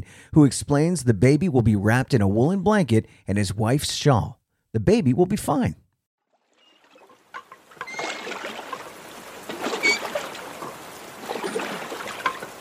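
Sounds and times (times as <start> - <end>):
speech: 0.0 - 5.8
oars dipping and pulling through water while rowing a boat: 6.3 - 12.5.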